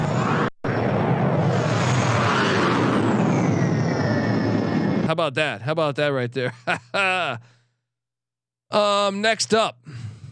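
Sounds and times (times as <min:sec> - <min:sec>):
loud jet airplane roar with high whine: 0:00.0 - 0:05.2
speech: 0:05.2 - 0:07.6, 0:08.7 - 0:10.0.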